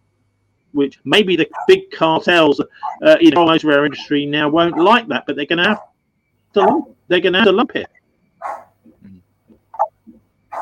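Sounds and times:
speech: 0:00.7 - 0:05.9, 0:06.5 - 0:08.0
dog barking at someone at the door: 0:01.5 - 0:01.8, 0:02.8 - 0:03.1, 0:03.9 - 0:05.9, 0:06.6 - 0:06.9, 0:08.4 - 0:08.8, 0:09.7 - 0:10.6.

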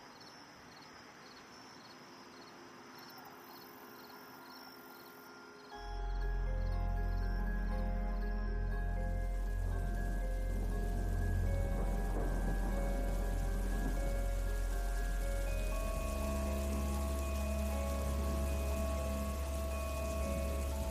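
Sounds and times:
steady rain pouring on a stormy evening at Flood Meadows in Hampshire England: 0:05.9 - 0:20.8
deep low rumble of thunder: 0:08.8 - 0:20.8.

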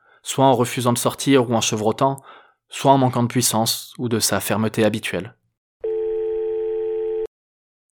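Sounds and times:
speech: 0:00.2 - 0:05.4
electronic telephone ringback tone of an outgoing call through a phone line: 0:05.8 - 0:07.3.

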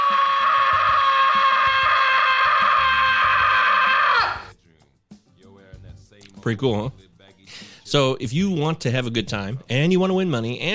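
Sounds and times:
person screaming loudly: 0:00.0 - 0:04.5
speech: 0:06.4 - 0:10.7.

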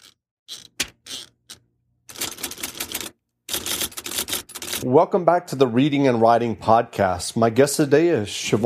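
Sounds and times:
typewriter keys clacking: 0:02.1 - 0:04.8
speech: 0:04.8 - 0:08.6.

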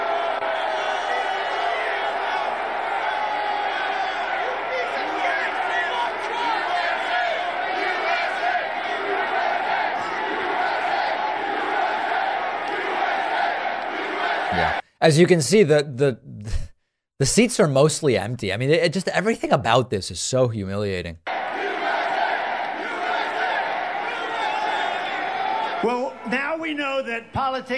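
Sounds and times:
large crowd shouting and yelling: 0:00.0 - 0:14.8, 0:21.3 - 0:26.3
speech: 0:15.0 - 0:16.6, 0:17.2 - 0:21.2, 0:25.8 - 0:27.7.

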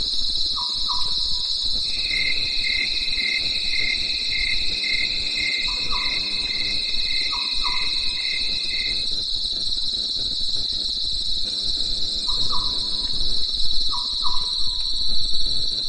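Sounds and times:
crickets chirping at night in the mountains: 0:00.0 - 0:15.8.

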